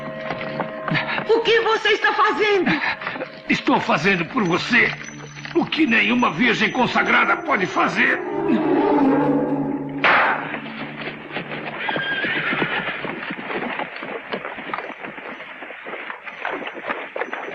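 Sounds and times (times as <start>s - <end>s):
horses walking slowly through water: 0.0s - 8.3s, 10.4s - 17.5s
speech: 1.3s - 8.6s
horse whinnying: 7.0s - 13.3s.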